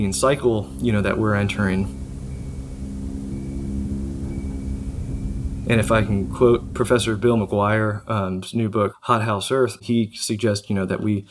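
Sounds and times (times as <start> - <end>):
speech: 0.0 - 2.0, 5.7 - 11.2
faint sustained ringing tone: 0.0 - 8.2
heavy wind roaring: 0.0 - 8.4.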